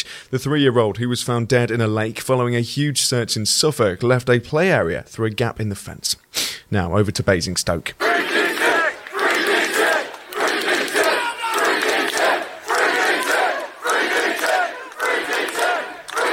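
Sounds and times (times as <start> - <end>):
speech: 0.0 - 8.7
crowd of demonstrators chanting outside a police centre: 8.0 - 16.3.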